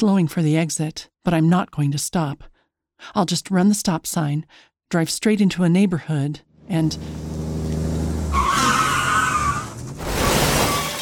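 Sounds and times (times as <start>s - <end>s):
speech: 0.0s - 7.3s
car engine rumbling: 6.6s - 10.4s
tires screeching: 6.8s - 11.0s
crunch and scrape of massive truck ramming a car: 7.2s - 11.0s.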